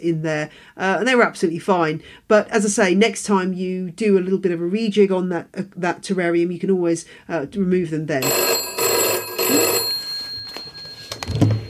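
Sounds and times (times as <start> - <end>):
speech: 0.0 - 8.7
telephone bell ringing: 8.2 - 11.6.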